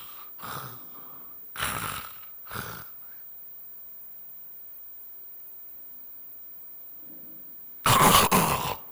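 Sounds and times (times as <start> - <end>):
voice imitating sleep apnea snoring with stopped breathing: 0.0 - 3.0, 7.9 - 8.9.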